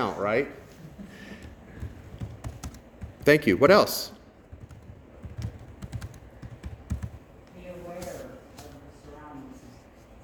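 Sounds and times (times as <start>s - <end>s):
speech: 0.0s - 0.7s, 3.2s - 4.2s
typing on a computer keyboard: 1.4s - 3.5s, 4.4s - 7.3s.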